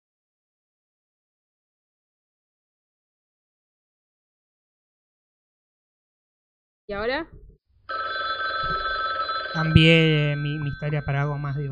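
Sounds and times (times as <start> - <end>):
speech: 6.9 - 8.1, 9.5 - 11.7
telephone ringing with electronic trill: 7.9 - 11.7.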